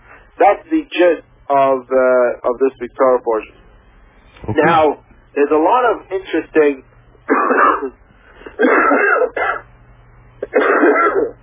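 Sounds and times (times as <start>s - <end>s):
speech: 0.4s - 3.6s, 4.4s - 8.0s, 8.6s - 9.4s
harsh throaty coughs of someone getting over a cough: 7.3s - 9.7s, 10.4s - 11.4s.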